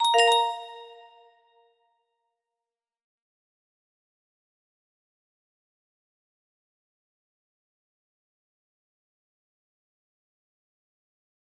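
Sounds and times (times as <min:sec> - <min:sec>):
music box melody as a text tone: 0:00.0 - 0:01.1.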